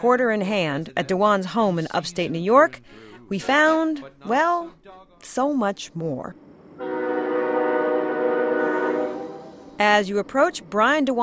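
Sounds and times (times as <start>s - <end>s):
speech: 0.0s - 6.4s, 9.8s - 11.2s
passing freight train horn near a house in Catskill New York: 6.8s - 9.8s.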